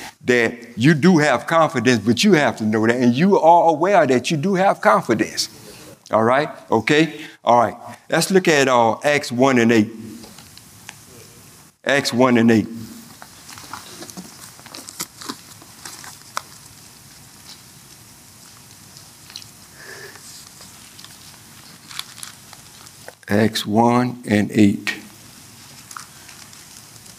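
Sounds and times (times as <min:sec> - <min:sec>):
speech: 0:00.3 - 0:10.1, 0:11.8 - 0:12.8, 0:23.3 - 0:24.9
Bible pages turning and paper rustling: 0:13.1 - 0:19.5, 0:20.2 - 0:23.2, 0:25.5 - 0:27.1.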